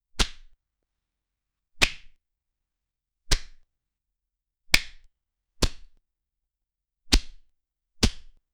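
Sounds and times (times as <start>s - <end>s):
sharp smack of boxing glove: 0.2s - 0.5s, 1.8s - 2.2s, 3.3s - 3.6s, 4.7s - 5.0s, 7.1s - 7.4s, 8.0s - 8.4s.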